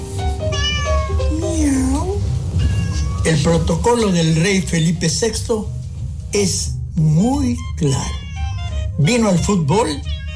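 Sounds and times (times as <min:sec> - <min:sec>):
steady low rumble: 0:00.1 - 0:10.3
cat meowing: 0:00.4 - 0:04.0, 0:07.8 - 0:08.8, 0:09.9 - 0:10.3
speech: 0:03.3 - 0:08.2, 0:09.0 - 0:10.2.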